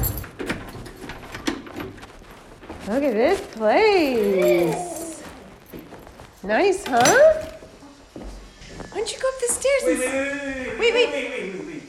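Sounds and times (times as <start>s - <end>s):
keys jangling: 0.0s - 2.0s, 3.1s - 7.6s
speech: 2.9s - 4.9s, 6.4s - 7.5s, 9.0s - 11.7s
laughter: 10.1s - 11.8s.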